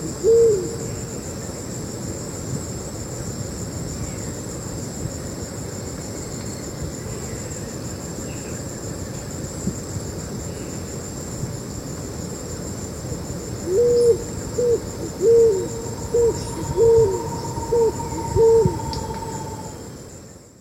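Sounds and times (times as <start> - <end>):
steady high insect whine: 0.0 - 1.7, 12.8 - 20.5
scaled pigeon cooing in Ecuador: 13.7 - 19.8.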